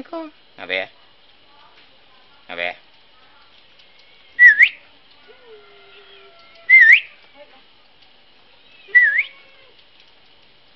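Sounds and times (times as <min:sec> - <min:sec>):
Asian pied starling song: 0:04.4 - 0:04.9, 0:05.6 - 0:07.2, 0:08.6 - 0:09.5
faint soft whistles: 0:08.9 - 0:09.4.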